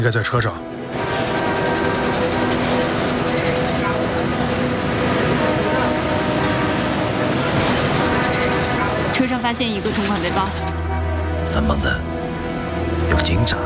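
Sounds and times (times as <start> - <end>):
speech: 0.0 - 1.2, 9.2 - 10.8, 11.4 - 12.2, 13.0 - 13.6
bus road noise: 0.0 - 13.6
bus engine rumble in traffic: 0.7 - 11.4.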